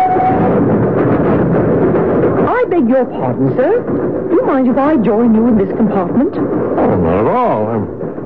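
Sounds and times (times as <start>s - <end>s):
train rumbling along the rails from Dover to London: 0.0s - 8.2s
speech: 2.8s - 8.1s.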